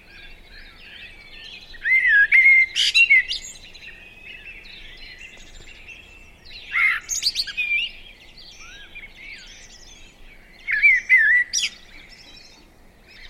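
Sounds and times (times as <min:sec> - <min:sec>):
Eurasian blackbird Turdus merula singing: 0:00.0 - 0:13.2
faint birdsong: 0:00.0 - 0:13.2.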